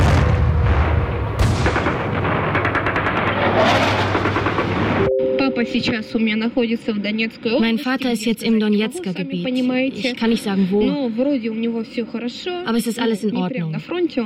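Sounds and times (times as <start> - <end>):
rockets and air defense systems firing: 0.0 - 5.1
speech: 5.7 - 14.2.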